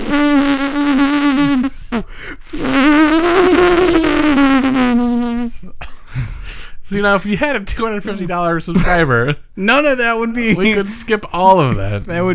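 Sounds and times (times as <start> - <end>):
buzzing fart-like raspberry noise made from a belly button: 0.0 - 5.6
speech: 7.0 - 12.3.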